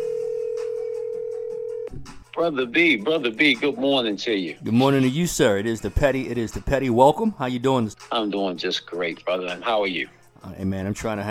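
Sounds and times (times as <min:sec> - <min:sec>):
telephone dial tone: 0:00.0 - 0:01.9
speech: 0:02.4 - 0:11.3.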